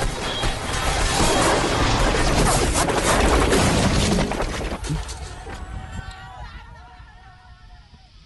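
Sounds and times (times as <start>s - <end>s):
helicopter crash from a film: 0.0s - 5.7s.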